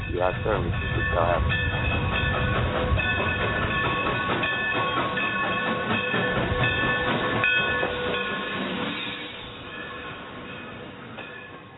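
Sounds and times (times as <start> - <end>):
train sound effect rumbling: 0.0 - 11.7
speech: 0.1 - 2.3
hissing steam of a train sound effect: 1.4 - 10.8.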